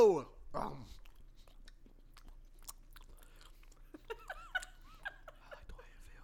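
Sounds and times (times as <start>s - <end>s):
people chewing sugar-soaked raisins: 0.4s - 6.0s
people giggling: 3.9s - 5.8s.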